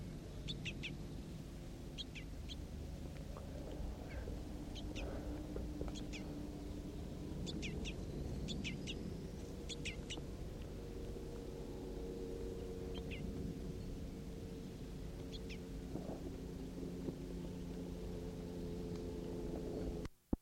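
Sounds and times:
steady low rumble: 0.0 - 20.2
crossbills giving sharp clipped chip calls: 0.4 - 1.0, 1.9 - 10.7, 11.8 - 15.8.

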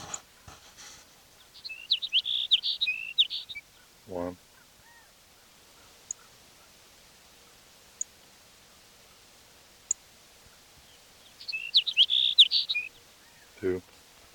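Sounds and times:
soft hiss: 0.0 - 14.3
sparrow chirping: 1.2 - 13.8
faint clicks: 6.0 - 6.3.

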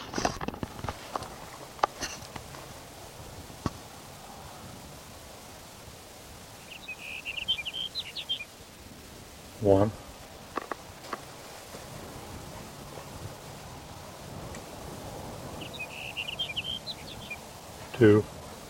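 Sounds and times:
soft steady hiss: 0.6 - 18.6
sage sparrow singing a high twittering phrase: 6.6 - 8.6, 15.6 - 17.8
speech: 9.6 - 10.0, 18.0 - 18.3.

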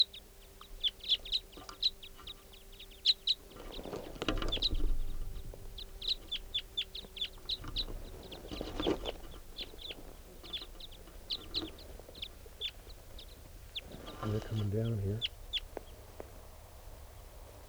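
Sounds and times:
big flock of crossbills, types 5 and 2, giving flight calls overhead: 0.0 - 17.6.

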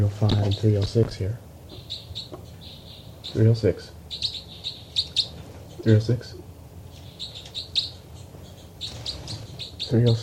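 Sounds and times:
speech: 0.0 - 2.0, 3.3 - 4.0, 5.8 - 6.4, 9.9 - 10.2
birds chittering: 0.0 - 10.2.

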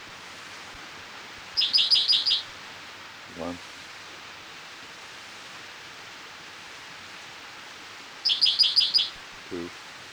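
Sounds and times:
spotted towhee singing along a creek: 1.6 - 2.4, 8.3 - 9.2
speech: 3.4 - 3.7.

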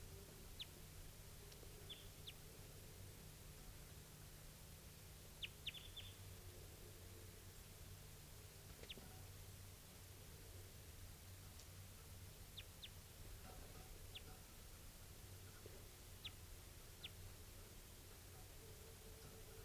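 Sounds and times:
steady hiss of noise: 0.0 - 19.6
wild bird high chirps: 5.4 - 6.2.

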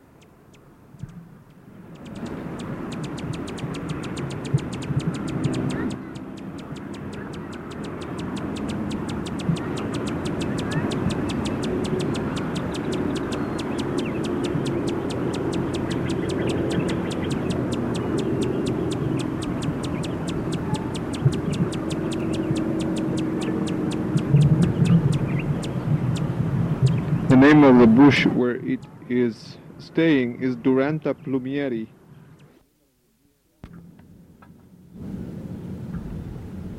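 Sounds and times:
male Allen's hummingbird giving sharp high ticking chips: 0.0 - 27.6
low outdoor rumble of traffic or aircraft: 0.0 - 36.7
speech: 27.5 - 32.0.

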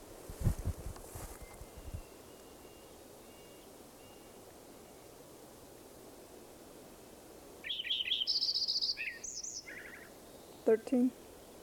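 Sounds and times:
faint hiss: 0.0 - 11.6
birds chirping and trilling: 7.6 - 11.6.

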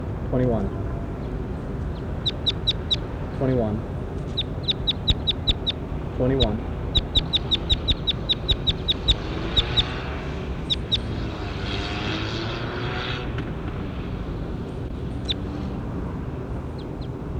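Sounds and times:
low drone from a propeller aircraft: 0.0 - 17.3
speech: 0.3 - 1.0, 3.4 - 3.9, 6.2 - 6.7
short high bird calls during a field recording: 1.1 - 11.4.

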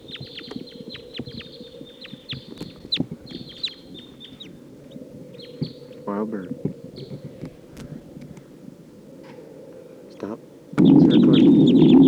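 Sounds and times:
wild birds chirping and squawking while taking off and circling: 0.0 - 12.0
speech: 6.1 - 6.7
low rumbling background: 10.8 - 12.0.

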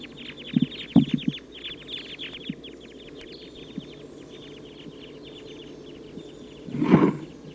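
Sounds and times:
flock of type 2 crossbills calling as it takes off: 0.0 - 7.5
low rumble: 0.0 - 7.5.

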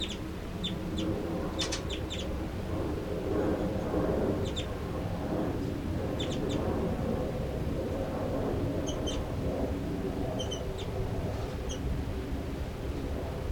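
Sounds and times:
bird chitters and calls: 0.0 - 2.3, 4.4 - 4.8, 6.2 - 6.6, 8.8 - 9.3, 10.4 - 11.0, 11.6 - 11.8
steady low rumble: 0.0 - 13.5.

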